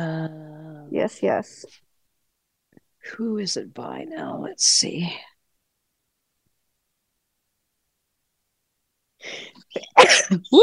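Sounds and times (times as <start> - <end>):
speech: 0.0 - 1.8, 3.0 - 5.3, 9.2 - 10.6
person sneezing: 9.5 - 10.5.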